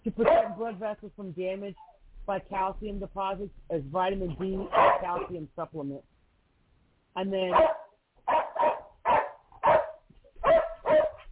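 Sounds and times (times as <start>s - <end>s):
dog barking: 0.2s - 0.8s, 4.6s - 5.4s, 7.5s - 11.3s
speech: 0.2s - 6.1s, 7.2s - 8.5s.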